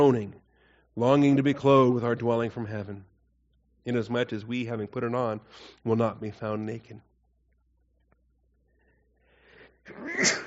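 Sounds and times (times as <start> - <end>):
speech: 0.0 - 0.4, 1.0 - 3.1, 3.8 - 7.1, 9.8 - 10.4
person sneezing: 9.9 - 10.4.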